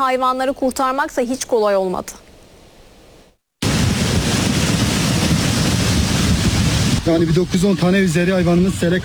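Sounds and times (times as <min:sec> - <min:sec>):
speech: 0:00.0 - 0:02.2, 0:07.1 - 0:09.0
floodwater rushing from streams overflowing after heavy downpour on highland pasture: 0:03.6 - 0:09.0.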